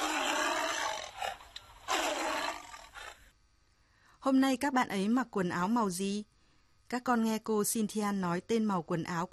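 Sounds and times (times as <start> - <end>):
tiger roaring loudly with growl and grunt: 0.0 - 3.2
speech: 4.2 - 6.3, 6.9 - 9.3.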